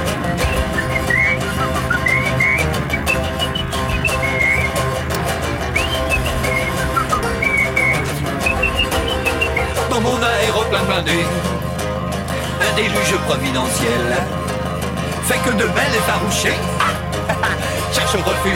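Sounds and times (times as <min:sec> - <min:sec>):
laughter: 0:00.0 - 0:11.6, 0:12.2 - 0:18.5
full busy band accompaniment: 0:00.0 - 0:18.5
person whistling a bright wandering melody: 0:00.3 - 0:05.0, 0:05.6 - 0:09.9
speech: 0:13.1 - 0:14.4, 0:15.4 - 0:17.2, 0:17.9 - 0:18.5.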